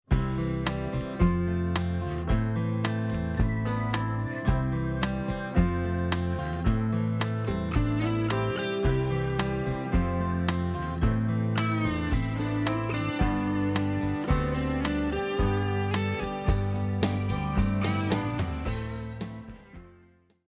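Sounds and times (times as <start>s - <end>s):
country music: 0.1s - 20.1s.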